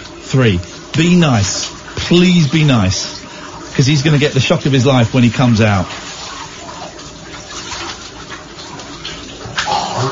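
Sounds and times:
shower running: 0.0s - 10.0s
speech: 0.3s - 3.2s, 3.8s - 6.0s
person clearing throat: 9.6s - 10.0s.

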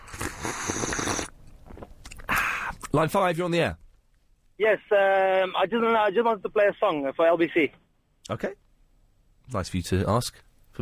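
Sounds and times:
person slurping tea: 0.0s - 1.9s
mouth and swallowing sounds: 0.0s - 2.3s
speech: 3.0s - 3.8s, 4.6s - 8.6s, 9.5s - 10.7s.

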